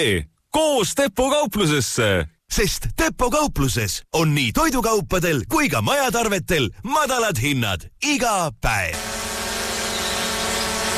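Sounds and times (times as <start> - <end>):
speech: 0.0 - 9.2
drone buzzing in flight: 8.9 - 10.9.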